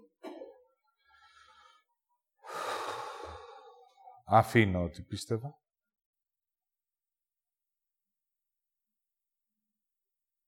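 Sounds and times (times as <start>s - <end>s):
person exhaling: 2.4s - 3.9s
speech: 4.3s - 5.6s.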